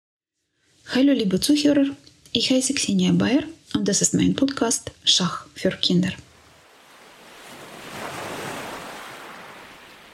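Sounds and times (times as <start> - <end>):
speech: 0.9 - 6.3
ocean surf washing onto a North Sea beach: 6.3 - 10.1.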